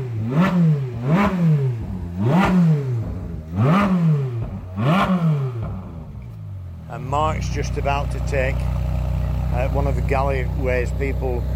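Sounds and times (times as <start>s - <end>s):
red Ferrari 458 Speciale engine revving on a race track circuit: 0.0s - 11.5s
speech: 7.4s - 8.8s, 9.6s - 11.5s.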